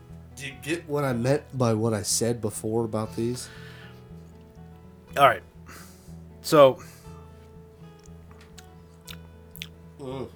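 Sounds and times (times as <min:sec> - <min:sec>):
speech: 0:00.4 - 0:03.7, 0:05.2 - 0:05.8, 0:06.4 - 0:07.0, 0:10.0 - 0:10.3
wet chewing: 0:08.0 - 0:09.8.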